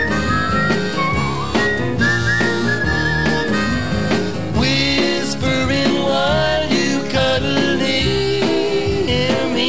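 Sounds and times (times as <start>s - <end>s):
whistled melody: 0.0s - 4.9s
full instrumental band playing: 0.0s - 9.6s.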